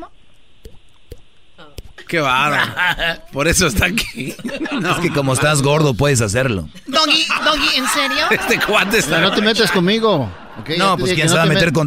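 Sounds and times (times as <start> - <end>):
voice imitating falling water drops with mouth pops: 0.0 - 2.2
speech: 2.1 - 11.8
laughter: 2.4 - 5.8, 6.8 - 11.8.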